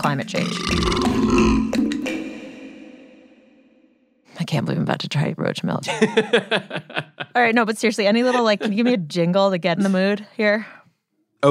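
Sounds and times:
speech: 0.0s - 2.0s, 4.5s - 10.8s
long deep throaty belch: 0.4s - 2.9s
laughter: 5.8s - 9.1s.

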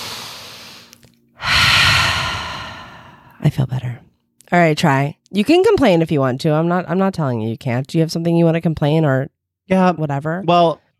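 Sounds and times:
deep breath: 0.0s - 3.4s
speech: 3.5s - 10.8s.

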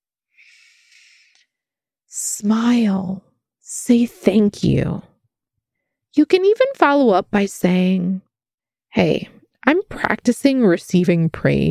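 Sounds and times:
slow deliberate breath: 0.3s - 1.7s
speech: 2.4s - 5.1s, 6.2s - 8.3s, 8.9s - 11.7s.

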